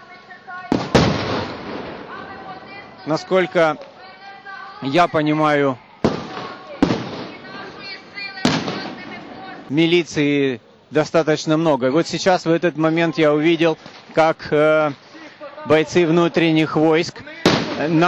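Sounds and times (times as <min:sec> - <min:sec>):
murmur of voices and crowd noise: 0:00.0 - 0:18.0
street noise: 0:00.0 - 0:18.0
gunshots in the street outdoors: 0:00.7 - 0:02.8, 0:06.0 - 0:09.7, 0:17.4 - 0:18.0
speech: 0:03.0 - 0:03.9, 0:04.8 - 0:05.8, 0:09.7 - 0:15.0, 0:15.6 - 0:17.2, 0:17.8 - 0:18.0.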